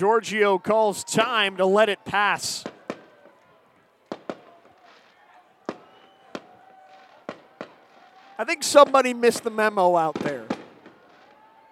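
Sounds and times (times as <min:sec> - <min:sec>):
speech: 0:00.0 - 0:02.7, 0:08.4 - 0:10.5
murmur of a large crowd: 0:00.0 - 0:11.7
fireworks going off in stadium outfield: 0:02.2 - 0:03.4, 0:04.1 - 0:11.7.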